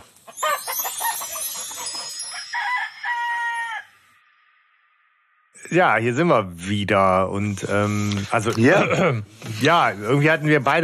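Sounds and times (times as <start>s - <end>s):
rooster crowing: 0.4s - 4.2s
speech: 5.7s - 10.8s.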